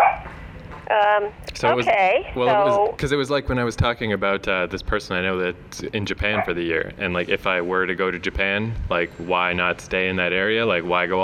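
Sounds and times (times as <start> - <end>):
dog barking: 0.0 - 0.3, 6.4 - 6.6
faint noise: 0.0 - 11.2
speech: 0.9 - 11.2.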